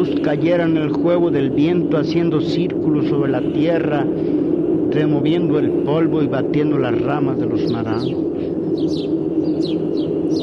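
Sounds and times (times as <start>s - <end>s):
steady low rumble: 0.0s - 10.4s
speech: 0.2s - 9.9s
sparrows chirping: 7.6s - 10.4s.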